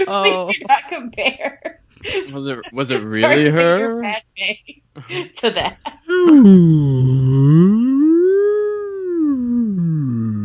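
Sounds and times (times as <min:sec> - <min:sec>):
laughter: 0:00.0 - 0:04.1, 0:05.0 - 0:06.3
speech: 0:00.0 - 0:08.4
person imitating whale call: 0:06.1 - 0:10.4.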